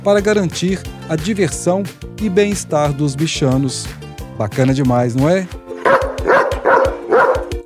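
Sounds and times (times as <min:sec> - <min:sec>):
speech: 0:00.0 - 0:06.1
dog barking with a full resonant tone: 0:05.8 - 0:07.6.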